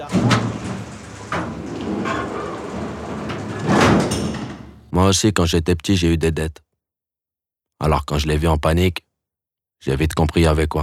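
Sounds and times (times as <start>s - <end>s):
garage door rattling and rumbling as it is opened: 0.0s - 4.9s
speech: 5.0s - 6.6s, 7.8s - 9.1s, 9.8s - 10.8s.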